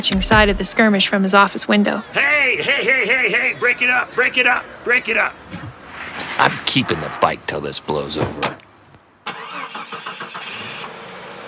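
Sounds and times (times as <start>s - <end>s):
wrecked Toyota car engine starting and idling: 0.0s - 1.4s, 9.2s - 11.4s
speech: 0.0s - 5.4s, 6.4s - 8.6s
laughter: 1.8s - 5.2s.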